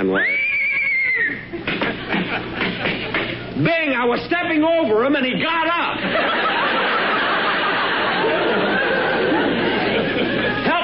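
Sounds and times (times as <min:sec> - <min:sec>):
horse whinnying: 0:00.2 - 0:01.5
laughter: 0:01.3 - 0:03.5, 0:05.9 - 0:10.8
speech: 0:03.6 - 0:06.6.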